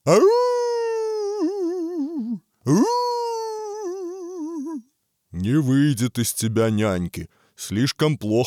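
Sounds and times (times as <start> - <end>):
speech: 0.0 - 0.4, 2.7 - 2.9, 5.4 - 8.4
person imitating a wolf howling: 0.0 - 4.9.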